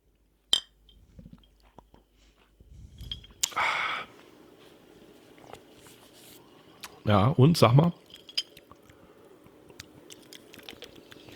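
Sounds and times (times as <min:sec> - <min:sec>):
two glasses of a sparkling drink clinking in a toast: 0:00.5 - 0:01.7, 0:07.7 - 0:08.8
brief breathy burst: 0:02.8 - 0:04.2
speech: 0:07.1 - 0:08.0.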